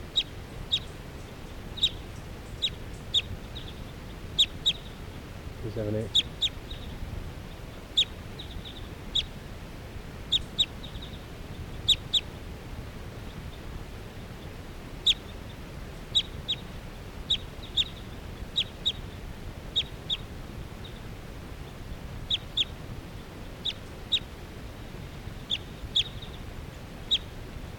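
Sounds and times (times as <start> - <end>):
low steady outdoor rumble: 0.0 - 27.7
bird calling with short sharp high chirps: 0.1 - 5.0, 5.7 - 9.3, 10.3 - 12.3, 16.1 - 16.6, 17.3 - 19.2, 22.3 - 22.7, 23.6 - 24.3, 25.4 - 26.4, 27.1 - 27.3.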